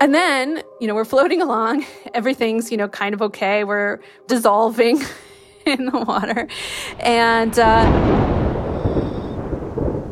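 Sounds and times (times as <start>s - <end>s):
speech: 0.0s - 8.3s
rumbling thunder: 6.0s - 10.1s
rain falling: 6.4s - 10.1s.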